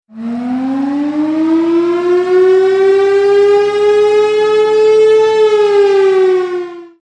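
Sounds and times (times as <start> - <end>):
tornado siren: 0.1 - 7.0.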